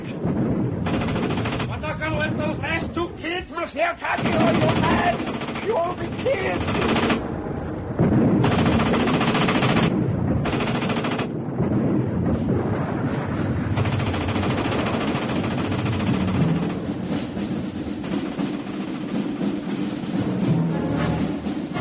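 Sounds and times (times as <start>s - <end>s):
steady heavy rumble: 0.0s - 21.7s
machine-gun fire aimed at a tank's treads: 0.2s - 1.9s, 4.1s - 7.3s, 8.0s - 12.0s, 13.6s - 17.2s, 17.9s - 19.9s
speech: 2.4s - 7.2s.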